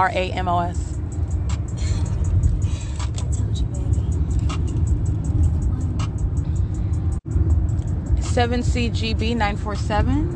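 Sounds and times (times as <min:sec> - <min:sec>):
speech: 0:00.0 - 0:00.9, 0:08.4 - 0:10.3
car road and engine noise heard from inside the cabin: 0:00.0 - 0:10.3.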